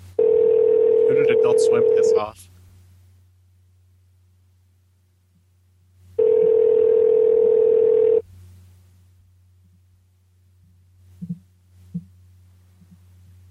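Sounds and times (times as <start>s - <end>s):
electronic ring tone of an outgoing phone call: 0.2s - 2.3s, 6.2s - 8.2s
speech: 1.5s - 2.5s.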